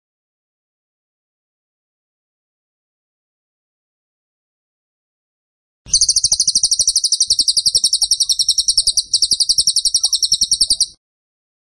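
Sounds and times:
tembakan bird singing fast high-pitched buzzy pulsed notes: 5.9 - 11.0.

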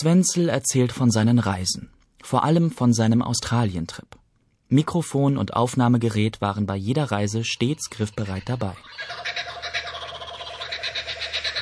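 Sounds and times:
speech: 0.0 - 9.5
laughing kookaburra calling in an Australian forest: 7.9 - 11.6.

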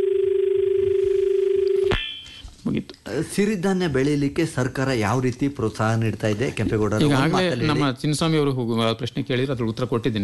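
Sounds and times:
telephone line noise: 0.0 - 1.9
telephone tone on a radio phone-in as a call arrives: 0.0 - 2.3
speech: 2.8 - 10.2.

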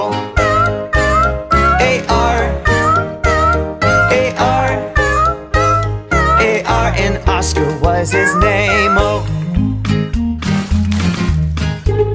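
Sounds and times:
steady musical backing of a children's song: 0.0 - 12.1
cat meowing in a children's song: 0.4 - 7.0, 8.0 - 9.2
speech: 8.0 - 9.3.

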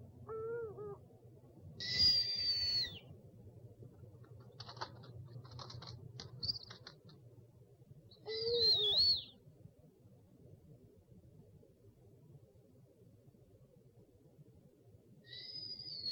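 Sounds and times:
owls calling: 0.3 - 1.0, 1.8 - 3.0, 8.3 - 9.3
faint scratchy clicks: 3.9 - 7.3.

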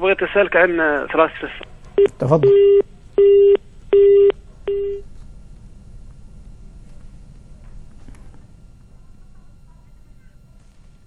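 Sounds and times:
speech: 0.0 - 3.4
busy tone on a telephone line after a call drops: 2.4 - 5.0.

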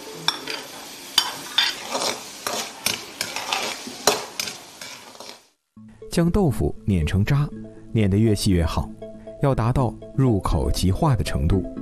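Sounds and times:
blanched diced vegetables stir-fried in hot oil in a wok: 0.0 - 5.6
utensil scraping against a pan of hot oil: 0.3 - 5.5
speech: 6.1 - 11.7.

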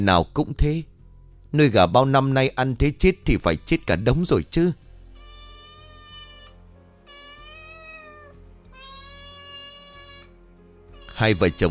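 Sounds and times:
speech: 0.0 - 0.9, 1.5 - 4.8, 11.2 - 11.6
cat meowing with an echoing call in a house: 5.2 - 11.6.

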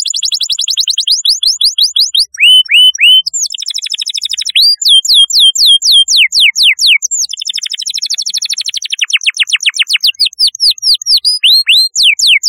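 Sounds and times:
Canary song with down-slurred whistles and chattering trill: 0.0 - 12.4.

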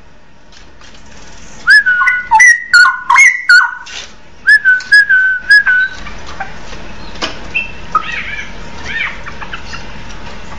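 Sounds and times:
oriental magpie-robin whistling song: 1.6 - 6.0, 7.0 - 9.1.

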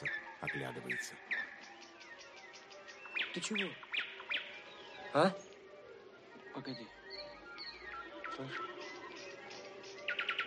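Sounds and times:
speech: 0.0 - 1.3, 3.4 - 3.8, 5.1 - 5.5, 6.6 - 7.0, 8.4 - 8.8
nightingale singing at dusk by a river: 0.0 - 10.4.

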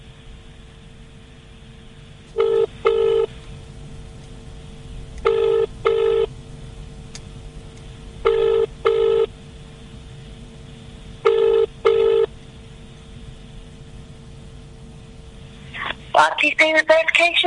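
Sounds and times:
double-burst telephone line ringing during call transfer to a bank advisor: 2.4 - 3.3, 5.2 - 6.3, 8.2 - 9.3, 11.2 - 12.3
speech: 16.4 - 17.4.

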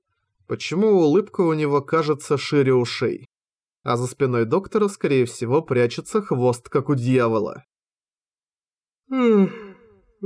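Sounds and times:
speech: 0.5 - 7.7, 9.1 - 9.6
woman yawning widely: 9.1 - 10.2.

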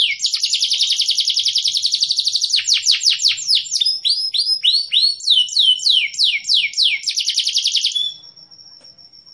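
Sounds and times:
Atlantic canary singing trills and whistles: 0.0 - 9.3.

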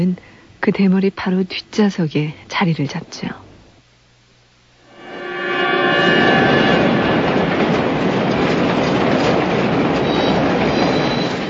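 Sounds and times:
speech: 0.0 - 3.4
faint high tonal whines of subway train: 4.7 - 8.6
subway train rumbling: 4.9 - 11.4.

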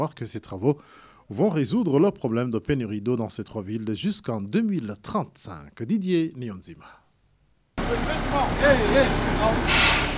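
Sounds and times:
speech: 0.0 - 7.0, 7.9 - 10.0
truck engine rumbling while helping lay a drinking-water pipeline: 7.8 - 10.1
bright hiss: 9.7 - 10.1.

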